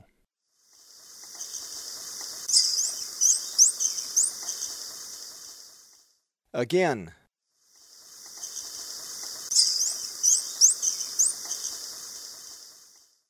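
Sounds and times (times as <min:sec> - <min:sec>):
Black-throated Mango calling in South American eastern lowlands: 0:01.2 - 0:05.7, 0:08.0 - 0:12.9.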